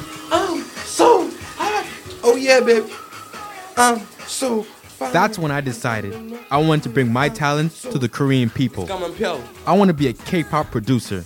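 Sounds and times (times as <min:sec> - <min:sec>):
person singing in short warbling phrases: 0:00.0 - 0:11.2
steady hiss of running shower water: 0:00.0 - 0:11.2
speech: 0:02.3 - 0:03.0, 0:03.8 - 0:11.2.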